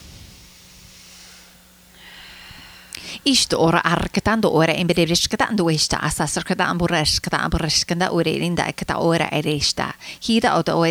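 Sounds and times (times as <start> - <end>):
deep breath during a guided energy session: 0.0 - 3.3
speech: 3.2 - 10.9.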